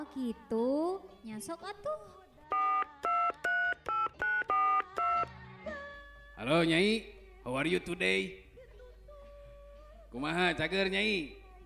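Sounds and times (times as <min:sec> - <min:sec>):
speech: 0:00.0 - 0:02.8, 0:06.4 - 0:08.4, 0:10.1 - 0:11.4
telephone keypad dialing tones: 0:02.5 - 0:05.3.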